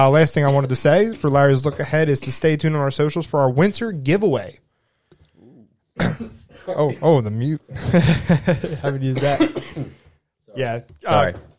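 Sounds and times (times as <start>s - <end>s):
speech: 0.0s - 4.6s, 6.0s - 11.5s
single sharp cough: 6.0s - 7.4s, 8.6s - 10.0s
laughter: 6.7s - 9.6s.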